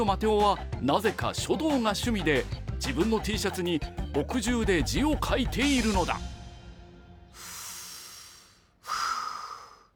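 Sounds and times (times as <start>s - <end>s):
speech: 0.0s - 6.3s
person taking a deep breath: 7.3s - 9.9s.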